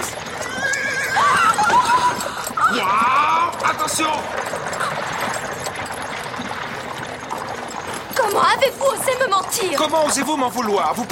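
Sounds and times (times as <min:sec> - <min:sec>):
clip-clop of trotting horse hooves: 0:00.0 - 0:11.0
horse neighing with a high, wavering whinny: 0:00.2 - 0:03.7
speech: 0:03.9 - 0:04.8, 0:08.3 - 0:11.0.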